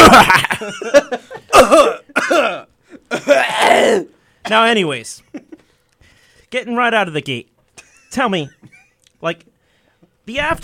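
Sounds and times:
laughter: 0:00.0 - 0:02.0
speech: 0:00.2 - 0:01.9, 0:04.5 - 0:05.5, 0:06.5 - 0:07.5, 0:08.1 - 0:09.5, 0:10.3 - 0:10.6
person coughing: 0:01.4 - 0:04.1.

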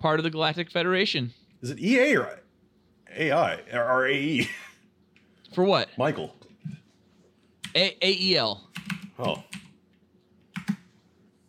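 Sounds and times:
speech: 0:00.0 - 0:02.4, 0:03.1 - 0:04.7, 0:05.5 - 0:06.8, 0:07.7 - 0:09.6
crisp key presses on a computer keyboard: 0:08.7 - 0:09.8, 0:10.5 - 0:10.9.

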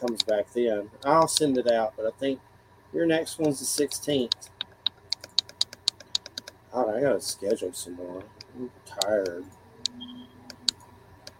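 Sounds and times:
speech: 0:00.0 - 0:04.6, 0:06.8 - 0:10.1
faint low hum: 0:00.0 - 0:11.3
clicks on a computer in a messaging app: 0:04.3 - 0:06.6, 0:08.4 - 0:11.3.

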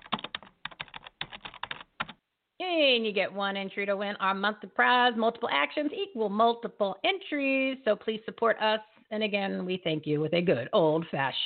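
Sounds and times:
rapid typing on a computer keyboard: 0:00.0 - 0:02.2
speech: 0:02.6 - 0:11.4.

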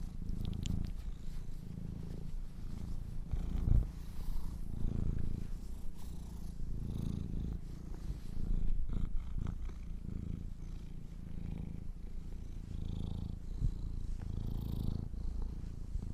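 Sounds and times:
domestic cat kittens purring: 0:00.0 - 0:16.1
faint rustling: 0:00.0 - 0:16.1.

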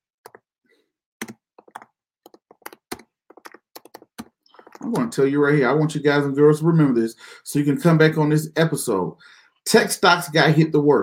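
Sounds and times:
typing on a computer keyboard: 0:01.2 - 0:04.8
speech: 0:04.8 - 0:11.0.

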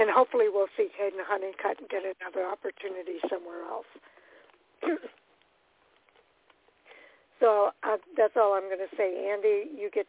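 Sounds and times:
low-level noise: 0:00.0 - 0:10.0
speech: 0:00.1 - 0:04.2, 0:04.8 - 0:05.2, 0:07.4 - 0:10.0
person giving a forceful cough: 0:04.8 - 0:05.2.

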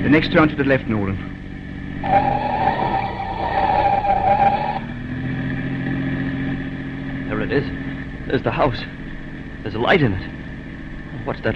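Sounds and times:
speech: 0:00.0 - 0:01.4, 0:02.0 - 0:02.4, 0:07.4 - 0:09.0, 0:09.6 - 0:10.4, 0:11.2 - 0:11.5
police car engine roaring at speed: 0:00.0 - 0:11.5
police car tires squealing through a hard left turn: 0:01.8 - 0:06.2.

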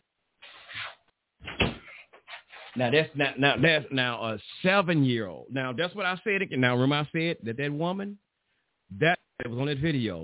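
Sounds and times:
door thud: 0:01.4 - 0:01.9
speech: 0:02.8 - 0:08.2, 0:08.9 - 0:10.2.

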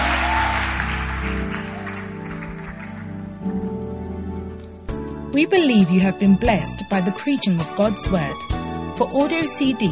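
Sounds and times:
audience applauding: 0:00.0 - 0:03.5
speech: 0:05.4 - 0:09.8.

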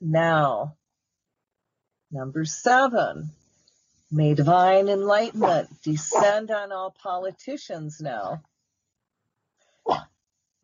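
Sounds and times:
speech: 0:00.0 - 0:00.8, 0:02.1 - 0:03.4, 0:04.1 - 0:08.5, 0:09.8 - 0:10.1
dog barking: 0:05.4 - 0:06.4.

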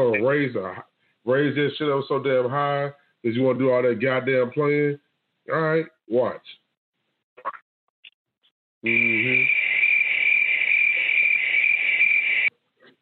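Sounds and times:
speech: 0:00.0 - 0:06.6, 0:08.8 - 0:09.6
crickets chirping: 0:08.8 - 0:12.5.

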